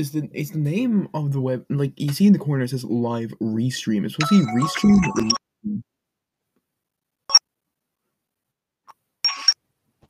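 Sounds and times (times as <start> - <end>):
speech: 0.0 - 5.9
phone ringtone electronic chimes: 4.2 - 5.4.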